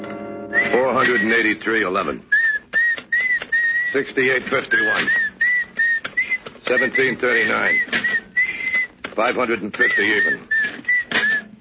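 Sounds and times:
person whistling thin eerie high-pitched tune: 0.5s - 1.3s, 2.3s - 4.0s, 4.7s - 7.2s, 7.7s - 8.9s, 9.9s - 11.5s
speech: 1.4s - 2.3s, 3.9s - 5.3s, 6.7s - 8.1s, 9.2s - 10.5s.

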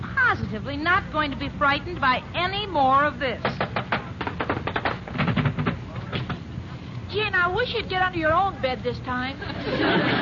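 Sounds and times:
speech: 0.4s - 3.7s, 7.1s - 10.2s
rapid uneven sharp knocks on a door: 3.5s - 5.8s
laughter: 9.4s - 10.2s.

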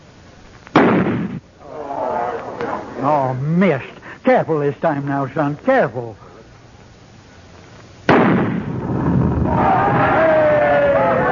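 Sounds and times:
quiet rumbling noise: 0.0s - 11.2s
loud gunshot fired at a powder load: 0.7s - 1.4s, 8.1s - 10.1s
speech: 3.0s - 6.2s.

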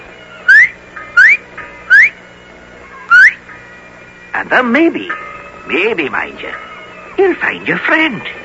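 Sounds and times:
short rising human whistling signal: 0.5s - 2.2s, 3.1s - 3.4s
speech: 4.4s - 8.4s.

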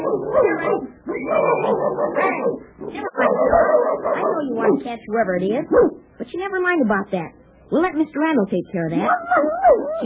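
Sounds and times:
dog barking: 0.0s - 4.9s, 5.7s - 6.0s, 9.1s - 10.0s
speech: 4.8s - 10.0s.

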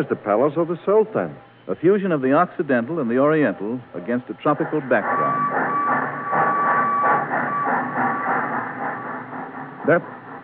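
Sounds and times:
speech: 0.0s - 5.9s, 9.9s - 10.2s
train carrying tobacco rumbling past in Sumatra: 2.8s - 10.4s
rhythmic clacking of train wheels: 4.5s - 10.4s
thin sustained train whistle tone and sharp whistle burst: 4.6s - 10.0s.

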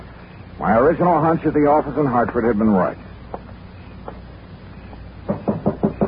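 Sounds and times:
speech: 0.6s - 3.1s
knocking on a front door: 5.3s - 6.0s.

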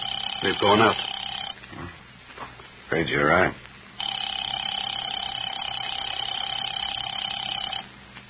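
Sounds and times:
telephone ringing unanswered: 0.0s - 1.6s, 4.0s - 7.9s
speech: 0.4s - 1.1s, 2.9s - 3.6s.

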